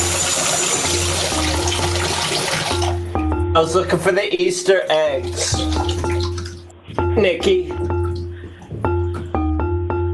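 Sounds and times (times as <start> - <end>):
water dripping and trickling inside a hole: 0.0 - 3.3, 4.7 - 7.1, 7.7 - 9.2
speech: 3.6 - 5.8, 7.2 - 7.9.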